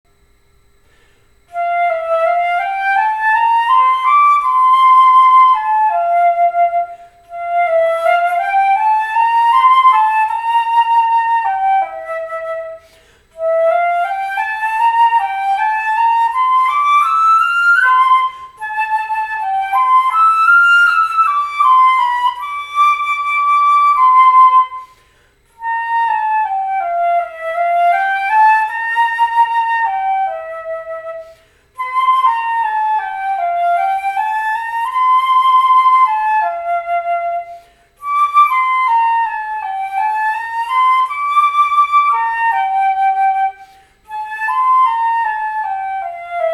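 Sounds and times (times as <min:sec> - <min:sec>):
flute playing andante: 0:01.4 - 0:46.5.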